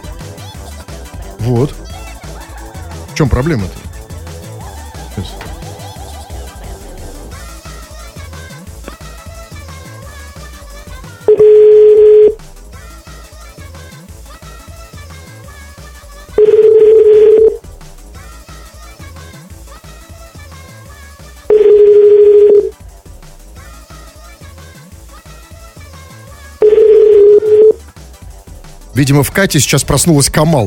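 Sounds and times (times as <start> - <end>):
speech: 1.4 - 1.9, 3.2 - 3.8, 5.2 - 5.5, 29.0 - 30.6
telephone tones as a call fails to connect: 11.3 - 12.4, 16.4 - 17.6, 21.5 - 22.7, 26.6 - 27.8.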